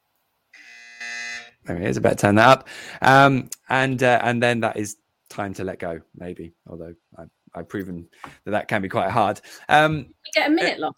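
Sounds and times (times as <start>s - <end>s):
loud harsh electronic buzzer: 0.6s - 1.6s
speech: 1.7s - 10.9s.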